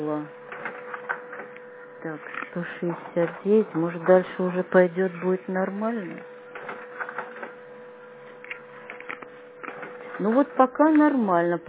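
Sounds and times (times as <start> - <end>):
speech: 0.0 - 0.4, 2.0 - 6.4, 10.2 - 11.6
printer feeding paper and printing pages: 0.0 - 11.6
printer soft clicks and clattering: 0.5 - 1.7, 2.4 - 4.4, 6.5 - 7.6, 8.4 - 11.2.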